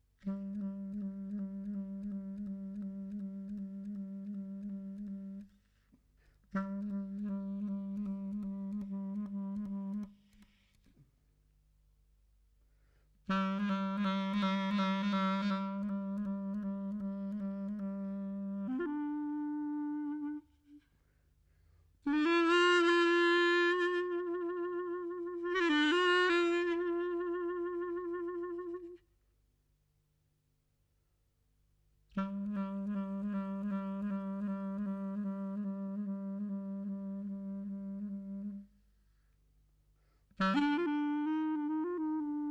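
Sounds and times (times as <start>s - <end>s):
E-flat clarinet: 0.0s - 11.0s, 13.2s - 21.2s, 22.0s - 29.2s, 32.1s - 38.8s, 40.3s - 42.4s.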